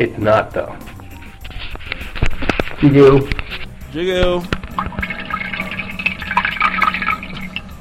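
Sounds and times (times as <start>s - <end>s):
speech: 0.0s - 0.9s, 2.8s - 4.9s
watery diarrhea from a person with a stomach virus splashing into toilet water: 4.6s - 7.7s.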